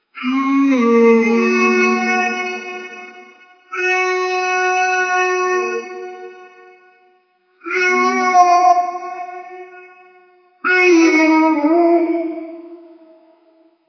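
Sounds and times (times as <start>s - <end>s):
friendly alien creature greeting: 0.2s - 3.1s, 3.7s - 6.3s, 7.6s - 9.8s, 10.7s - 12.9s.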